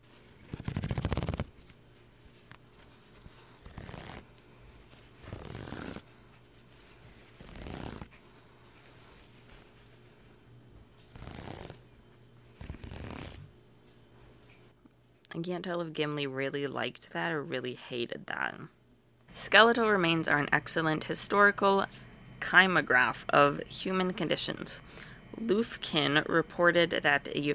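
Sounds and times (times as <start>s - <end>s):
crochet yarn stitches being ripped out: 0.5s - 1.6s, 3.6s - 4.3s, 5.2s - 6.0s, 7.3s - 8.1s, 11.0s - 11.8s, 12.6s - 13.5s
speech: 15.4s - 18.8s, 19.4s - 27.5s.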